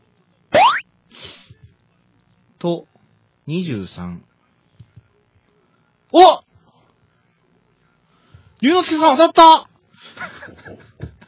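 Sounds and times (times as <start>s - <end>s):
bright springy boing tone sweeping upward: 0.6s - 0.8s
speech: 2.6s - 2.9s, 3.5s - 4.3s, 6.1s - 6.4s, 8.6s - 10.8s
laughter: 10.0s - 11.2s.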